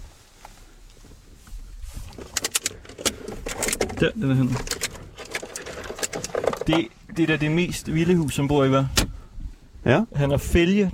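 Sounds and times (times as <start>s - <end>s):
car keys jangling as they're handled: 2.2s - 6.7s
speech: 4.0s - 4.9s, 6.6s - 9.0s, 9.8s - 10.9s.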